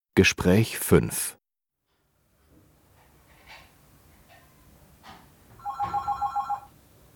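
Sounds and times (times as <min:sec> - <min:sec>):
speech: 0:00.2 - 0:01.4
telephone bell ringing: 0:05.6 - 0:06.8.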